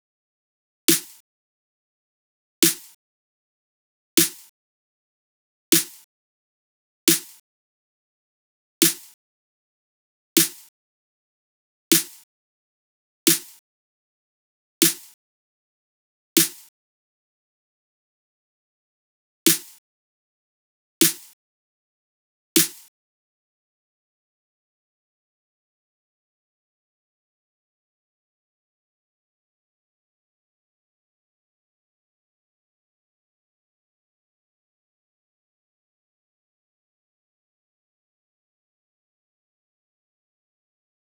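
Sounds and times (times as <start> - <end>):
snare drums: 0.9 - 1.2, 2.6 - 3.0, 4.2 - 4.5, 5.8 - 6.0, 7.1 - 7.4, 8.8 - 9.2, 10.4 - 10.7, 11.9 - 12.2, 13.3 - 13.6, 14.8 - 15.2, 16.4 - 16.7, 19.5 - 19.8, 21.0 - 21.3, 22.6 - 22.9.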